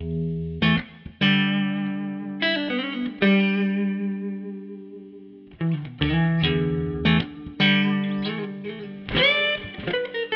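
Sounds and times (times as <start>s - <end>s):
clean bright electric guitar playing blues in E minor: 0.0s - 10.3s.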